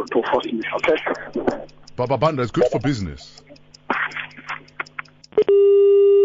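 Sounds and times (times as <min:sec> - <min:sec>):
speech: 0:00.0 - 0:03.5
scrappy telephone receiver noise: 0:00.0 - 0:06.2
sharp click of a telephone line cutting off: 0:00.8 - 0:05.5
loud steady electronic telephone busy tone: 0:05.4 - 0:06.2.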